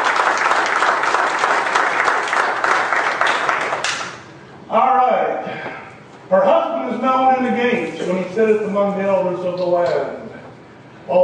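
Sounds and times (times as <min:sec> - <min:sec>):
large gathering applauding: 0:00.0 - 0:04.2
speech: 0:06.3 - 0:10.2, 0:11.1 - 0:11.2.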